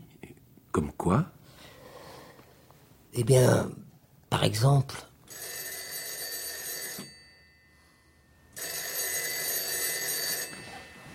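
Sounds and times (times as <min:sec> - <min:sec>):
speech: 0:01.0 - 0:01.4, 0:03.2 - 0:05.5
old-style telephone bell ringing: 0:05.3 - 0:11.1.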